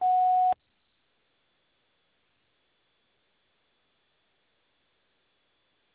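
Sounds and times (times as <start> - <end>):
telephone answering machine beep: 0.0 - 0.6.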